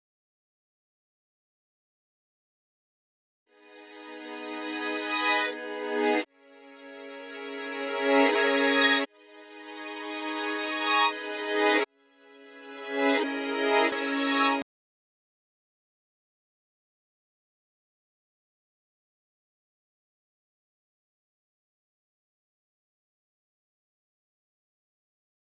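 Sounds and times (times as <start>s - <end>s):
reverse strings melody loop in G sharp minor: 3.8s - 11.8s, 12.4s - 14.6s.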